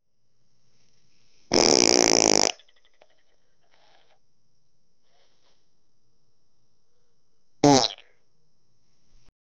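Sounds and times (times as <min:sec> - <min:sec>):
farts: 0:01.5 - 0:02.7, 0:07.6 - 0:08.1.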